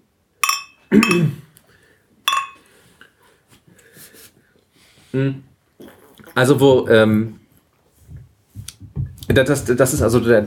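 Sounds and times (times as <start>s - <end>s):
glasses or bottles clinking in a toast: 0.4s - 1.4s, 2.3s - 2.7s
speech: 0.9s - 1.4s, 5.2s - 5.5s, 6.4s - 7.4s, 9.3s - 10.4s.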